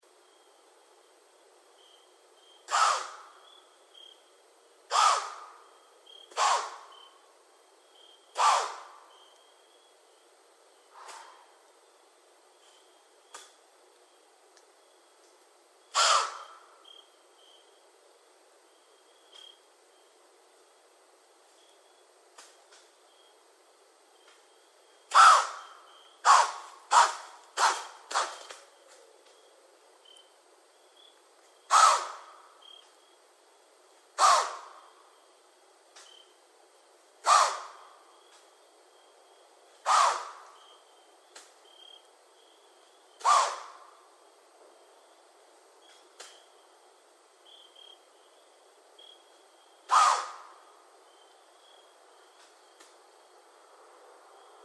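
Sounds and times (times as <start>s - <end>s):
White-tailed deer: 2.7s - 3.4s, 4.9s - 5.6s, 6.3s - 7.0s, 8.4s - 9.0s, 15.9s - 16.6s, 25.1s - 29.1s, 31.7s - 32.3s, 34.2s - 34.8s, 37.2s - 37.8s, 39.8s - 40.4s, 43.2s - 43.8s, 49.9s - 50.5s.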